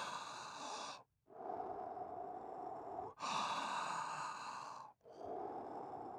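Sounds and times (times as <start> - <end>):
slow deep breathing: 0.0 - 6.1.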